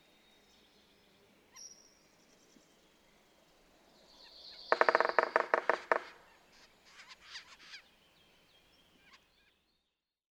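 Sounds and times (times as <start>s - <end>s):
Red-naped sapsucker hoarse nasal calls: 4.7s - 7.8s.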